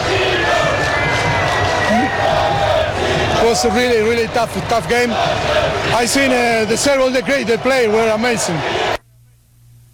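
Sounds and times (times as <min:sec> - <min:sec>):
whistles in a stadium crowd: 0:00.0 - 0:02.2
people shouting in a stadium crowd: 0:00.0 - 0:09.0
stadium crowd at a soccer game in Seattle cheering to honor the national team manager: 0:00.0 - 0:09.0
speech: 0:03.5 - 0:09.0.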